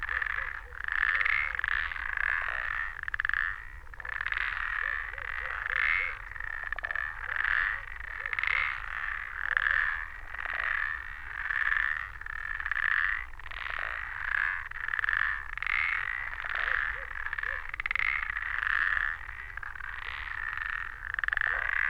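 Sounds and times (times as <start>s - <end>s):
chorus of parsley frogs calling from a flooded meadow: 0.0s - 21.8s.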